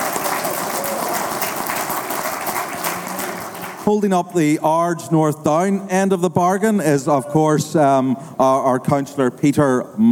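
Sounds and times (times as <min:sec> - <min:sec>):
crowd applauding: 0:00.0 - 0:03.9
speech: 0:03.9 - 0:10.1.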